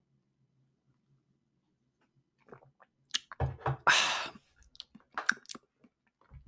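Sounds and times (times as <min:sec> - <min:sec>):
person sipping a cup of coffee: 0:02.5 - 0:05.6
small mouth clicks: 0:03.1 - 0:05.6.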